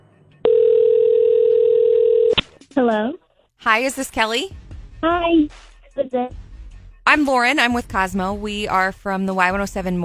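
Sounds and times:
telephone dial tone on a line as a call is placed: 0:00.5 - 0:02.4
speech: 0:02.8 - 0:06.4, 0:07.1 - 0:10.0.

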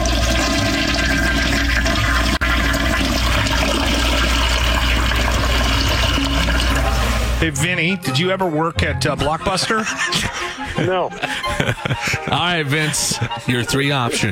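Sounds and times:
toilet flushing: 0:00.0 - 0:07.6
speech: 0:07.4 - 0:14.3
laughter: 0:09.2 - 0:14.3.

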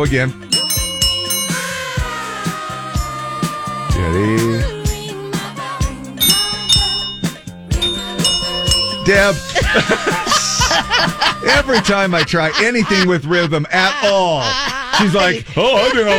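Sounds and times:
speech: 0:00.0 - 0:00.6, 0:04.0 - 0:04.7, 0:09.1 - 0:16.1
several handheld bells ringing together: 0:00.0 - 0:05.2, 0:05.8 - 0:12.1
laughter: 0:00.7 - 0:16.1.

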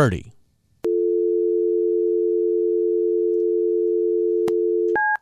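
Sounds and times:
speech: 0:00.0 - 0:00.3
telephone dial tone: 0:00.9 - 0:05.0.

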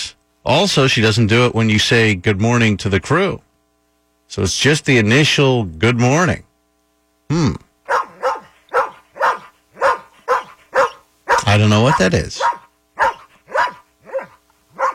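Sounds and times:
speech: 0:00.4 - 0:03.5, 0:04.3 - 0:06.5, 0:07.3 - 0:07.6, 0:11.6 - 0:12.6
Shar-Pei barking: 0:07.9 - 0:14.9.

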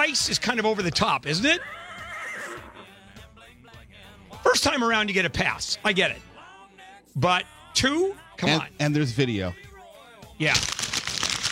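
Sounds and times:
speech: 0:00.0 - 0:01.8, 0:04.5 - 0:06.3, 0:07.2 - 0:09.7, 0:10.4 - 0:10.8
horse neighing and snorting: 0:01.4 - 0:03.0.

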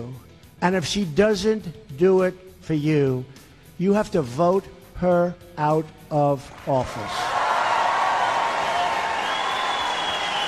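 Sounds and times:
speech: 0:00.0 - 0:07.2
large crowd roaring and cheering: 0:06.9 - 0:10.4.

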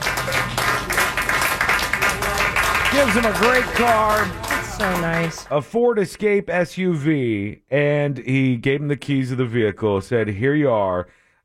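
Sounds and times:
group of people applauding: 0:00.0 - 0:05.6
speech: 0:03.0 - 0:11.4.

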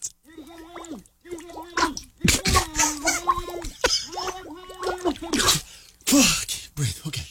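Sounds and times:
person singing a wobbly tune into water: 0:00.0 - 0:05.7.

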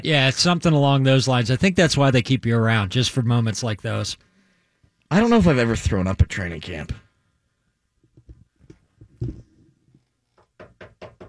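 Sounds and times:
speech: 0:00.0 - 0:04.3, 0:05.1 - 0:07.0, 0:09.2 - 0:09.4
knocking on wood: 0:10.4 - 0:11.2.

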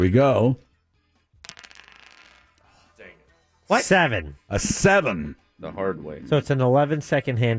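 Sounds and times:
speech: 0:00.0 - 0:00.7, 0:03.7 - 0:07.5
dice clattering and tumbling across a hard surface: 0:01.4 - 0:02.6.

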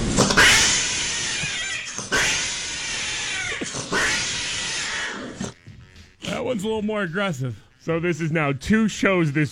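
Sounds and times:
cats yowling while mating: 0:00.4 - 0:05.6
speech: 0:06.5 - 0:09.5.

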